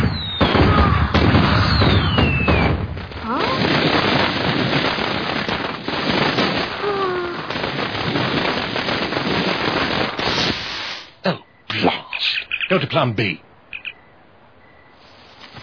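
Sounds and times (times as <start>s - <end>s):
fireworks exploding in crackling and popping bursts: 0.0s - 11.2s
speech: 12.7s - 13.5s.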